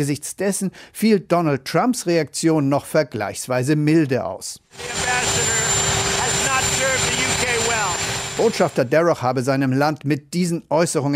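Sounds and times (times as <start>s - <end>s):
speech: 0.0s - 6.0s, 8.4s - 11.1s
helicopter rotor clattering with whining engine: 4.7s - 9.0s.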